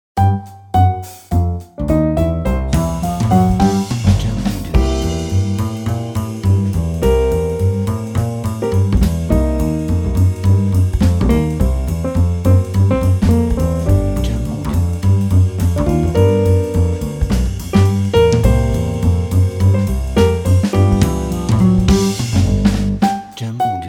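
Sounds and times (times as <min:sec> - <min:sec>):
happy swing music: 0:00.1 - 0:23.8.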